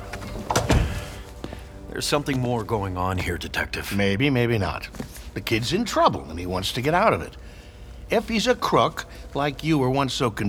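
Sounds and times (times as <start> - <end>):
door swinging shut with scrape, thud and latch click: 0.0 - 1.6
speech: 2.0 - 7.5, 8.1 - 10.4.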